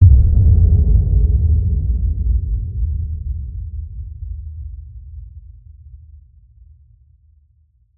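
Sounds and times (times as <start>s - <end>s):
designed cinematic boom hit: 0.0s - 3.8s.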